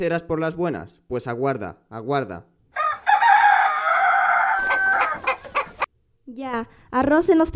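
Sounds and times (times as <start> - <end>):
speech: 0.0 - 2.5, 6.3 - 7.5
rooster crowing: 2.8 - 5.9.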